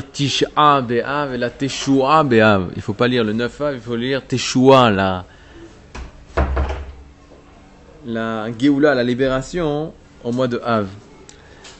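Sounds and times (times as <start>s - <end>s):
speech: 0.2s - 5.4s, 8.0s - 11.0s
door being pushed shut: 6.0s - 7.0s.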